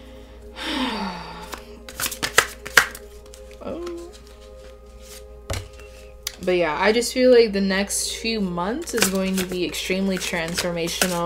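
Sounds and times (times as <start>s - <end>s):
soft breathy vocal sounds: 0.0s - 1.8s
deck of cards being riffle shuffled with sharp snaps: 1.4s - 6.4s, 8.8s - 11.2s
speech: 6.4s - 11.2s.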